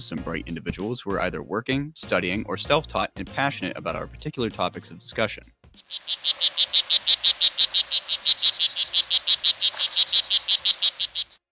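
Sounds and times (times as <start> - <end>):
speech: 0.0 - 6.9
frogs croaking: 5.9 - 11.4.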